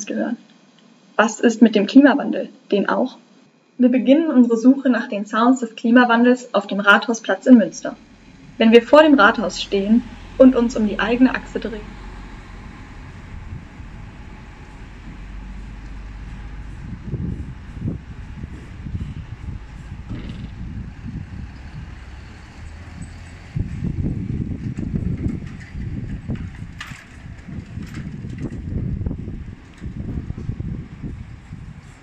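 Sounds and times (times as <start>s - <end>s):
speech: 0.0s - 0.5s, 1.2s - 3.2s, 3.8s - 12.0s
wind on a town hall square: 7.6s - 32.0s
passing cars on a town hall square: 7.9s - 32.0s.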